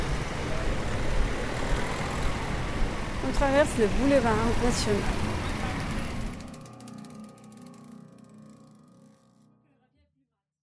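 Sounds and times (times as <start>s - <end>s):
low engine rumble of cars turning at a street crossing: 0.0s - 6.5s
speech: 3.3s - 5.3s.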